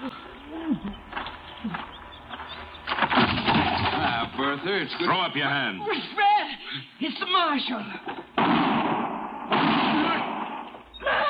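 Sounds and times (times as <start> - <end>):
gunshots during a holdup: 3.0 - 4.2, 8.4 - 10.9
speech: 4.6 - 8.1.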